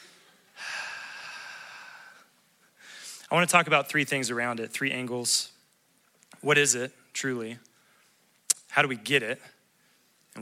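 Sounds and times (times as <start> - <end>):
deep breath in and out: 0.0 - 3.3
speech: 3.3 - 5.6, 6.4 - 7.7, 8.8 - 9.6.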